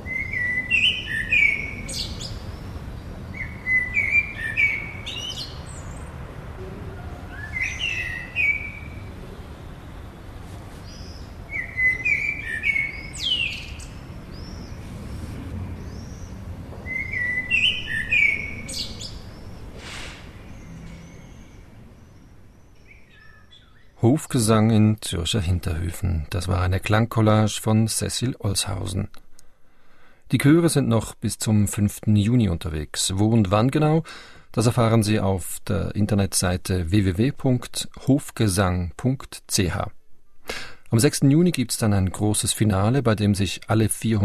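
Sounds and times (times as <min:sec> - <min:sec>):
Eurasian blackbird singing in a Zurich backyard on a mild evening: 0:00.0 - 0:09.5, 0:10.8 - 0:24.0
speech: 0:24.3 - 0:29.2, 0:30.3 - 0:44.2.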